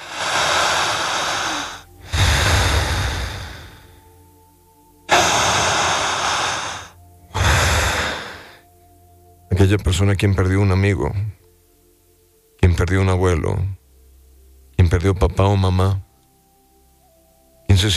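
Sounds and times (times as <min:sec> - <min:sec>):
slow deep breathing: 0:00.0 - 0:04.5, 0:05.1 - 0:09.0
speech: 0:09.6 - 0:11.4, 0:12.8 - 0:13.8, 0:14.9 - 0:16.1, 0:17.7 - 0:17.9.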